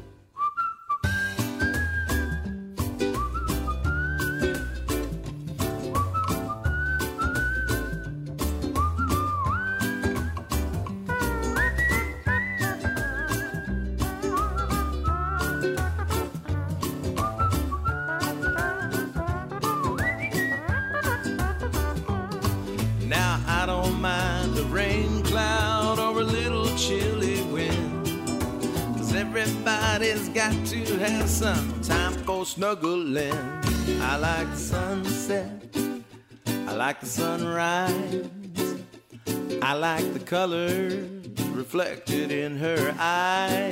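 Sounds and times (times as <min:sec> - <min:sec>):
people whistling a cheerful tune: 0:00.3 - 0:32.4
steady backing music with drums and bass: 0:01.0 - 0:32.3, 0:33.3 - 0:35.3
speech: 0:30.4 - 0:31.7, 0:32.5 - 0:35.6, 0:36.8 - 0:38.4, 0:39.6 - 0:43.7.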